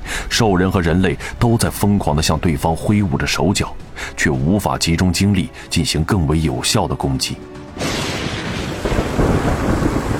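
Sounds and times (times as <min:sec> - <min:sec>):
speech: 0:00.4 - 0:07.6
rolling thunder: 0:07.8 - 0:10.1
steady rain: 0:07.8 - 0:10.1.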